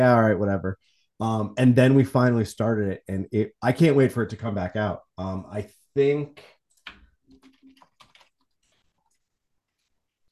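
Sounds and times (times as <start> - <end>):
speech: 0.0 - 6.5
typing on a keyboard: 6.8 - 8.6.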